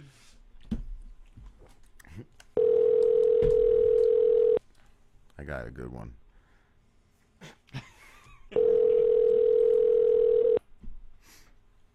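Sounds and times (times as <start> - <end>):
steady telephone tone on a call: 2.6 - 4.6, 8.6 - 10.6
speech: 5.5 - 6.2.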